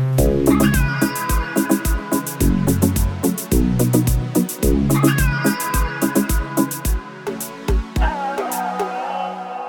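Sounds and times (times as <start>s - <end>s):
bright synth tune with punchy percussion and layered synths: 0.2s - 9.2s.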